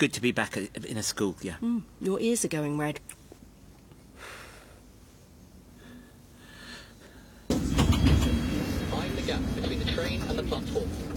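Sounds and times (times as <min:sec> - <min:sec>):
speech: 0:00.0 - 0:03.2
London Underground Circle Line train rumbling at a station: 0:07.5 - 0:11.1.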